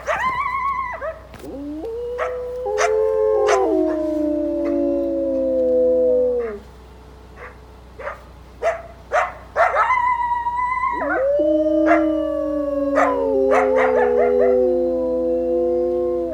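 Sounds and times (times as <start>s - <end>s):
coyotes yipping and barking: 0.0s - 5.1s, 7.3s - 14.8s
two wolves howling together: 0.0s - 6.7s, 9.7s - 16.3s.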